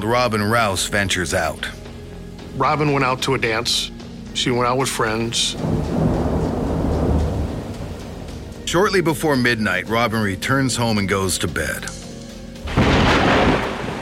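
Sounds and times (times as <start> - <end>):
speech: 0.0 - 1.8, 2.6 - 6.0, 8.7 - 12.0
deep rumble of thunder: 5.5 - 8.6, 12.7 - 14.0
heavy rain downpour: 5.6 - 8.5, 12.7 - 14.0.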